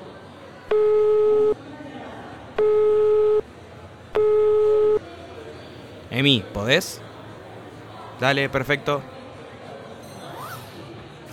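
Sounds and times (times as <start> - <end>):
faint noise: 0.0 - 11.3
telephone ringback tone during an outgoing call: 0.7 - 1.6, 2.6 - 3.4, 4.1 - 5.0
speech: 6.2 - 7.1, 8.2 - 9.2.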